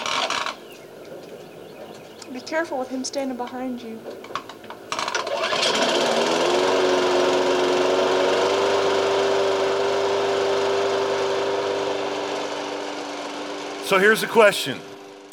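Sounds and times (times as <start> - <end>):
speech: 2.3 - 4.3, 13.9 - 14.9
lawn mower engine running: 4.4 - 15.3.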